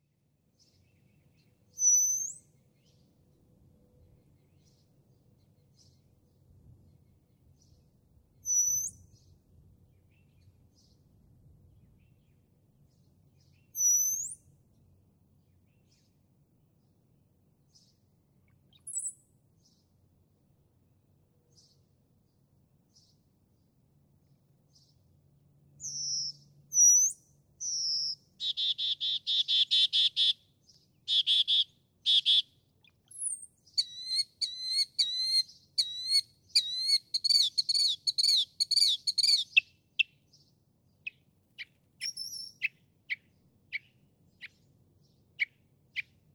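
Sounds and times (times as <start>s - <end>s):
Northern Mockingbird singing: 25.8s - 30.4s, 31.1s - 40.2s, 41.0s - 44.6s.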